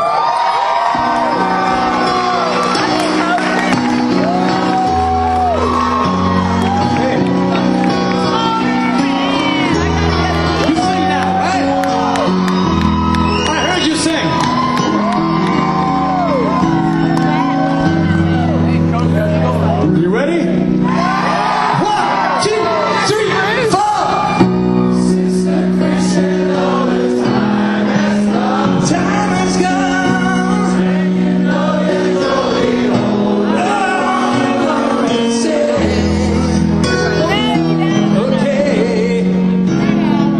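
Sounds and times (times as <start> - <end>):
concert crowd shouts and whoops of cheering: 0.0 - 19.9, 20.6 - 40.3
large concert crowd singing along: 0.8 - 13.1, 20.8 - 40.3
amplified live concert music with steady bass notes: 1.0 - 40.3.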